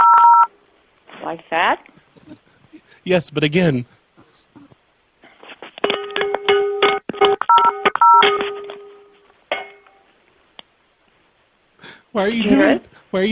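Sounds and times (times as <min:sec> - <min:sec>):
speech: 0:01.3 - 0:02.4, 0:03.0 - 0:04.0, 0:12.2 - 0:13.2
phone banged against a pan like cymbals: 0:05.8 - 0:10.0.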